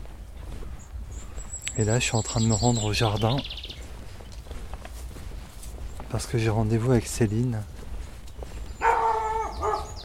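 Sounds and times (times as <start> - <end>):
speech: 1.8 - 3.7, 6.2 - 7.8
pet dog barking: 8.8 - 10.0.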